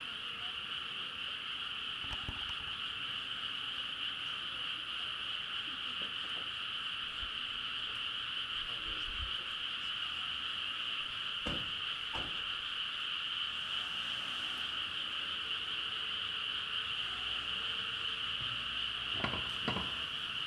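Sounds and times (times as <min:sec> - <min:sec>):
bats or frogs calling on a station platform in Fukushima: 0:00.6 - 0:20.4.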